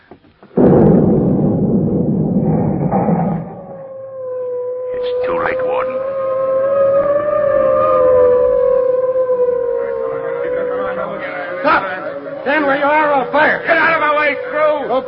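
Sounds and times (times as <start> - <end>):
explosion blowing off prison wall: 0.6 - 4.3
wailing siren-like tones: 1.9 - 15.0.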